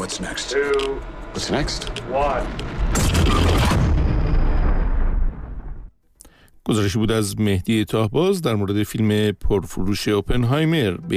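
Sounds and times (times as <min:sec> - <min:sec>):
speech: 0:00.0 - 0:03.8, 0:06.6 - 0:11.1
massive cinematic explosion with deep roaring rumble: 0:02.6 - 0:05.9.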